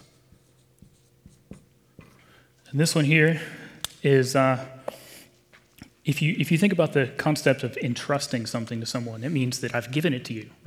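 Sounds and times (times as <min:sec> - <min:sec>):
chalk or marker tapping and scratching across a board: 0:00.0 - 0:02.2
speech: 0:02.7 - 0:04.8, 0:06.1 - 0:10.6.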